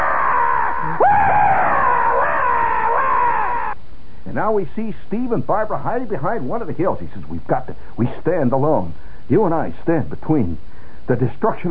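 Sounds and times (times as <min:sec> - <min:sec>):
giant creature monstrous scream: 0:00.0 - 0:03.8
speech: 0:04.4 - 0:11.7.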